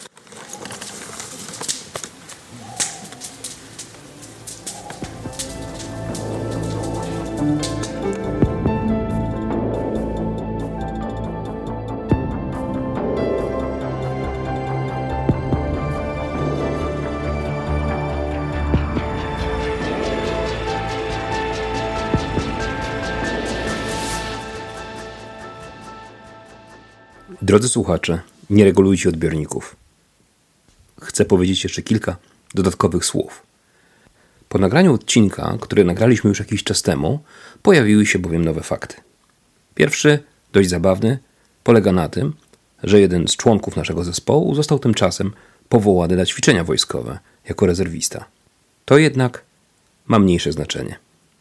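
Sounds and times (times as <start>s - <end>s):
crackling campfire: 0.0s - 35.2s, 41.3s - 42.9s
soft sustained musical tones: 3.4s - 27.5s
speech: 27.5s - 29.8s, 31.2s - 33.5s, 34.5s - 39.1s, 39.8s - 49.5s, 50.1s - 51.0s.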